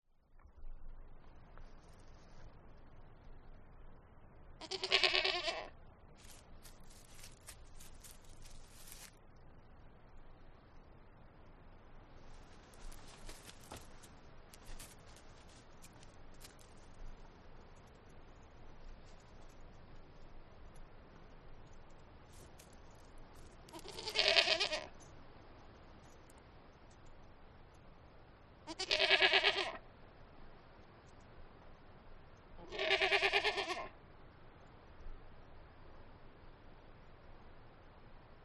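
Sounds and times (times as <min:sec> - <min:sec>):
goat bleating in the countryside: 0:04.6 - 0:05.7, 0:23.7 - 0:24.9, 0:28.7 - 0:29.8, 0:32.6 - 0:33.9.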